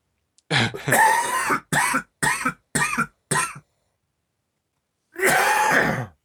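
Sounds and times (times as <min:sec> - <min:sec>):
person coughing: 0:00.5 - 0:03.6, 0:05.2 - 0:06.2.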